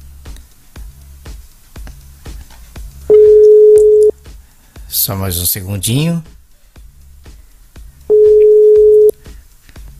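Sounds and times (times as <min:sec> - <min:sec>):
telephone ringing tone while placing a call: 0:03.1 - 0:04.1, 0:08.1 - 0:09.1
speech: 0:05.0 - 0:06.4.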